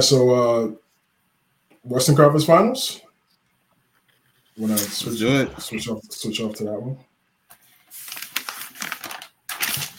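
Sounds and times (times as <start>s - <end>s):
speech: 0.0s - 0.8s, 1.8s - 3.0s, 4.6s - 7.1s
pages being turned: 4.4s - 5.3s, 7.5s - 9.9s.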